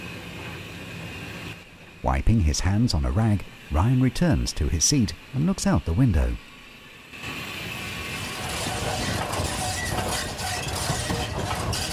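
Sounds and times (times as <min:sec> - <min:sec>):
speech: 0:02.0 - 0:06.5
steam locomotive wheels and connecting rods turning: 0:07.4 - 0:11.9.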